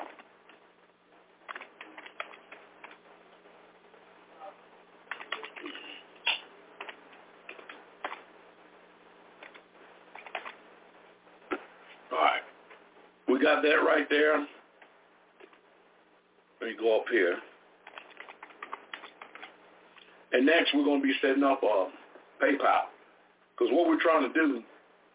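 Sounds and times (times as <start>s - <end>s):
low hum: 0.0s - 25.1s
computer keyboard typing: 1.5s - 3.0s, 5.1s - 8.3s, 9.4s - 10.6s, 17.8s - 19.6s
speech: 13.4s - 14.6s, 16.7s - 17.5s, 20.3s - 22.9s, 23.6s - 24.7s.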